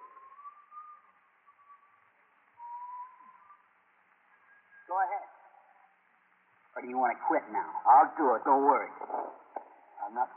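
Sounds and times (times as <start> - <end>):
boy whistling tunelessly while walking past: 0.0 - 3.8
steady hiss: 0.0 - 10.3
speech: 6.8 - 9.4, 10.1 - 10.3.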